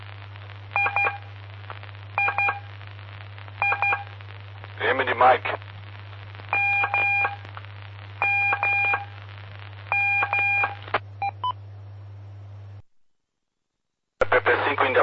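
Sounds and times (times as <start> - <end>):
steady low electrical hum: 0.0 - 15.0
Morse code telegraphy tones from a telegraphy lesson: 0.8 - 1.2, 3.6 - 4.1, 6.5 - 7.4, 8.2 - 9.1, 9.9 - 11.6
speech: 5.2 - 5.6.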